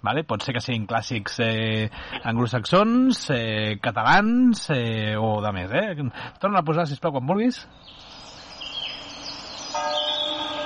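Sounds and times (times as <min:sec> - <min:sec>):
speech: 0:00.0 - 0:08.0
birds chirping: 0:07.6 - 0:10.6
church bells ringing: 0:09.1 - 0:10.6.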